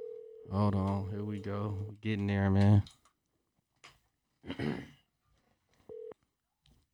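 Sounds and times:
phone call ring tone before answer: 0:00.0 - 0:02.0, 0:05.9 - 0:06.2
speech: 0:00.4 - 0:03.0, 0:04.4 - 0:05.0.

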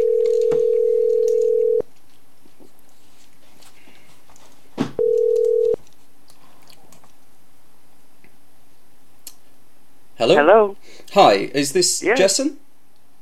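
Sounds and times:
telephone ringing tone on the line: 0:00.0 - 0:01.8, 0:05.0 - 0:05.8
speech: 0:10.2 - 0:12.6.

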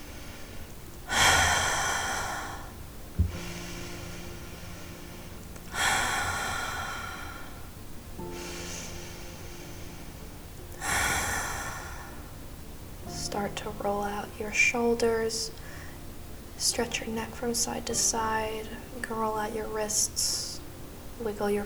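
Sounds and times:
deep cleansing breaths during meditation: 0:00.0 - 0:13.3, 0:15.5 - 0:16.6
speech: 0:13.5 - 0:15.6, 0:16.6 - 0:20.4, 0:21.2 - 0:21.6.

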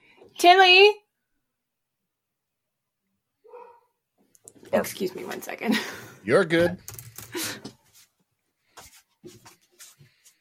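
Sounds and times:
speech: 0:00.4 - 0:01.0, 0:04.7 - 0:07.6
pet dog barking: 0:03.4 - 0:04.0.

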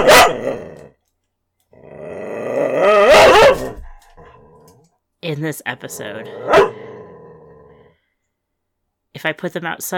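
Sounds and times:
dog barking: 0:00.0 - 0:00.6, 0:03.0 - 0:04.0, 0:06.4 - 0:06.8
dog growling: 0:00.0 - 0:01.0, 0:01.7 - 0:05.0, 0:05.7 - 0:08.0
speech: 0:05.3 - 0:06.8, 0:09.2 - 0:09.9.

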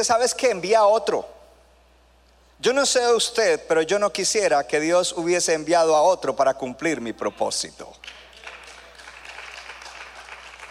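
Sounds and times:
speech: 0:00.0 - 0:01.4, 0:02.6 - 0:08.2
audience clapping: 0:08.0 - 0:10.6.

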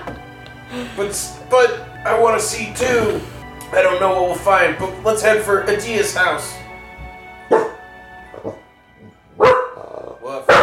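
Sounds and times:
speech: 0:00.7 - 0:06.6
dog barking: 0:07.5 - 0:07.8, 0:09.4 - 0:10.6.

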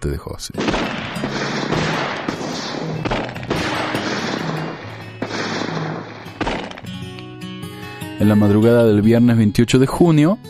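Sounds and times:
speech: 0:00.0 - 0:01.8, 0:08.2 - 0:10.4
loud bursts of gunfire crackling in rapid succession: 0:00.6 - 0:07.0.

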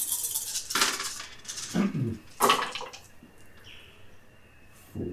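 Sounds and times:
dice clattering and tumbling across a hard table: 0:00.0 - 0:03.1.

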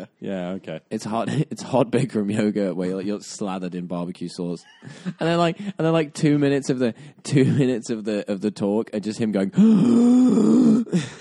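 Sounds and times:
speech: 0:00.1 - 0:11.1
voice imitating forceful breathing with strained groaning exhale: 0:09.6 - 0:11.1.

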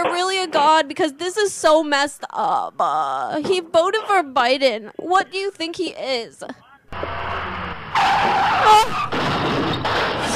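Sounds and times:
speech: 0:00.1 - 0:07.2, 0:08.0 - 0:09.4
car crash impact: 0:06.9 - 0:10.3
car tires squealing in a skid: 0:06.9 - 0:10.3.

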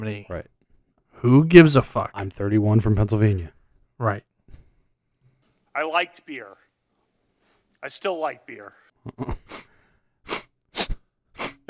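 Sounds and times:
speech: 0:00.0 - 0:00.6, 0:01.2 - 0:04.3, 0:05.8 - 0:06.6, 0:07.8 - 0:09.7
person sniffing at a Senate confirmation hearing: 0:09.1 - 0:11.6.

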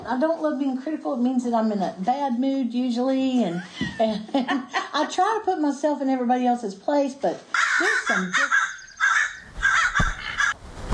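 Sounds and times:
speech: 0:00.1 - 0:08.6
crow cawing: 0:07.6 - 0:10.6.

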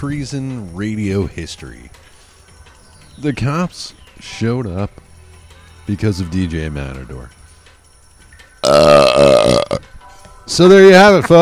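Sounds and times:
speech: 0:00.0 - 0:02.1, 0:03.2 - 0:05.0, 0:05.9 - 0:07.4, 0:08.7 - 0:11.4
loud deep burp into a microphone: 0:08.6 - 0:09.8.

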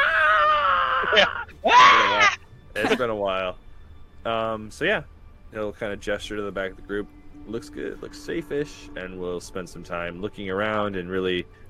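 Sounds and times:
person imitating a screaming bellowing mushroom: 0:00.0 - 0:03.0
speech: 0:01.1 - 0:03.6, 0:04.2 - 0:11.6.

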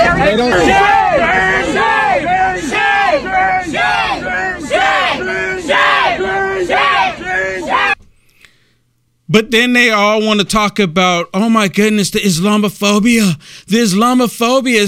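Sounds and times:
large crowd at a rally yelling in unison: 0:00.0 - 0:08.0
speech: 0:09.3 - 0:14.8.

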